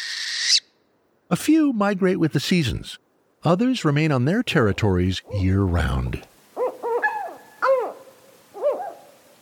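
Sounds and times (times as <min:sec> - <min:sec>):
northern hawk owl calling: 0:00.0 - 0:00.8, 0:06.6 - 0:09.2
speech: 0:01.3 - 0:06.3.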